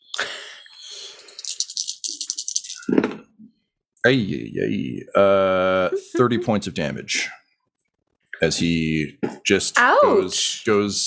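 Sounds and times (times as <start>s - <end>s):
dice rattling in a hand and rolling: 1.2s - 2.8s
speech: 4.0s - 7.4s, 8.4s - 11.0s.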